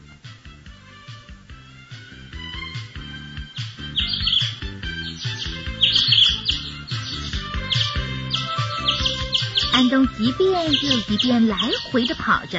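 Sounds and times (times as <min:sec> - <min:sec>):
caged birds chirping: 0:02.8 - 0:12.5
speech: 0:09.9 - 0:12.5.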